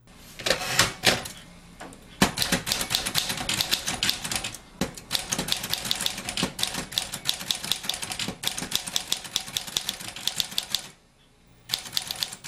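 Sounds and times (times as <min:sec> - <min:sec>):
manual or electric typewriter keystrokes: 0:02.2 - 0:10.9, 0:11.7 - 0:12.4.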